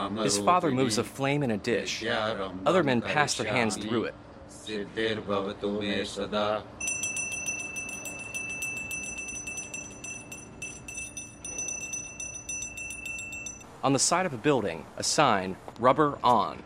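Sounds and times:
speech: 0:00.0 - 0:06.8, 0:13.8 - 0:16.6
hand bell ringing rapidly: 0:06.8 - 0:14.5.

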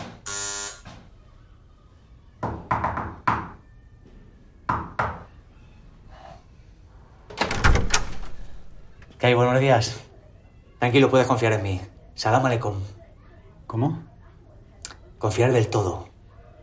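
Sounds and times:
brief buzzing tone: 0:00.3 - 0:00.9
sharp raps knocking on a door: 0:02.4 - 0:03.6, 0:04.7 - 0:05.3
speech: 0:09.2 - 0:10.1, 0:10.8 - 0:13.0, 0:13.7 - 0:14.0, 0:15.2 - 0:16.1.

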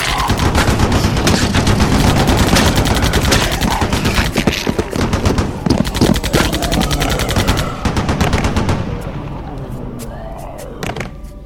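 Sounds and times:
machine guns blasting at zombies' heads: 0:00.0 - 0:09.1.

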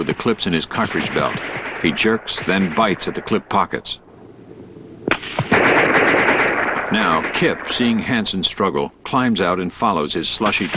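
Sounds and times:
speech: 0:00.0 - 0:04.0, 0:07.0 - 0:10.7
volley of rifle gunfire into snowy woods during a military skirmish: 0:00.0 - 0:04.0, 0:05.0 - 0:08.4.

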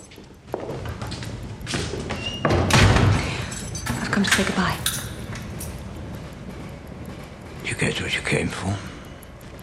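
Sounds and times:
heavy prison interview room door opening: 0:02.2 - 0:05.6
speech: 0:04.2 - 0:05.0, 0:07.8 - 0:08.9.

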